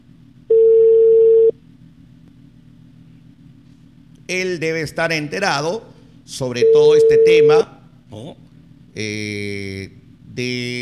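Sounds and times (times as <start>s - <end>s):
telephone line tone as an incoming call connects: 0.5s - 1.5s
speech: 4.3s - 8.4s, 9.0s - 10.7s.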